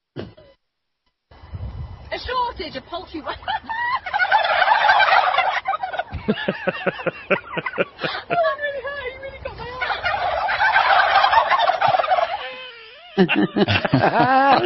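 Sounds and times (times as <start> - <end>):
speech: 2.2 - 3.8, 6.3 - 8.8, 13.2 - 14.6
woman reporter laughing: 3.2 - 4.2, 5.7 - 10.1, 12.1 - 14.6
huge flock of turkeys gobbling: 3.4 - 9.0, 9.6 - 13.9.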